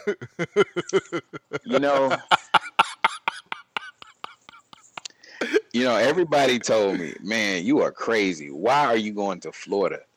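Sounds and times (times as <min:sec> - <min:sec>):
speech: 0:00.0 - 0:03.2, 0:05.4 - 0:10.1
laughter: 0:00.0 - 0:07.4
harsh coughing fit: 0:02.2 - 0:07.2.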